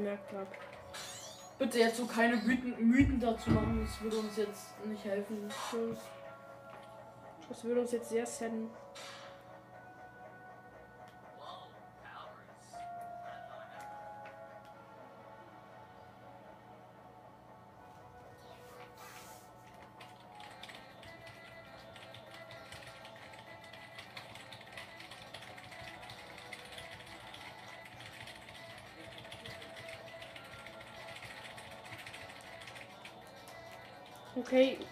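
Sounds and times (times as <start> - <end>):
speech: 0.0 - 6.2, 7.5 - 9.2, 34.5 - 34.8
fast keyboard typing with clicking keystrokes: 19.6 - 34.9.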